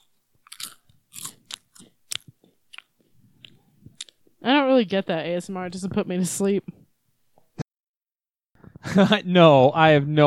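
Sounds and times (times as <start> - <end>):
crunchy biting and chewing mimicking eating a pickle: 0.0 - 4.2
speech: 4.4 - 6.8, 9.0 - 10.2.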